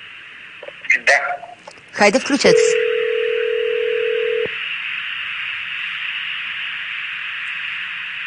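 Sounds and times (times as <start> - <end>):
open phone-line hiss: 0.8 - 8.2
speech: 1.0 - 2.8
telephone line tone: 2.3 - 4.6.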